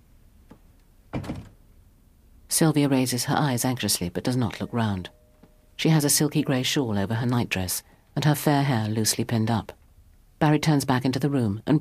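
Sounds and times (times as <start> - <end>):
door closing thump indoors: 1.1 - 1.6
speech: 2.6 - 5.2, 5.8 - 9.8, 10.4 - 11.8.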